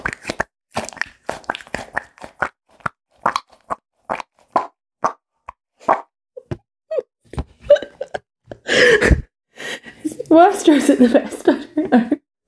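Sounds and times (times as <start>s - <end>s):
squishy sensory toy being squeezed: 0.0s - 5.2s, 5.8s - 6.6s
speech: 10.3s - 12.2s.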